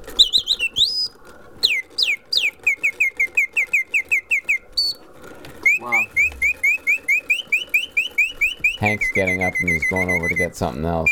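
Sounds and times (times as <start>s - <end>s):
clockwork bird automaton chirping with whistled trills: 0.0s - 11.1s
speech: 8.8s - 11.1s.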